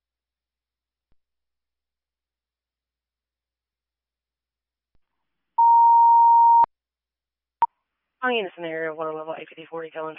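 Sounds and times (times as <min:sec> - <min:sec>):
steady telephone line tone: 0:05.6 - 0:06.7
speech: 0:08.2 - 0:10.1.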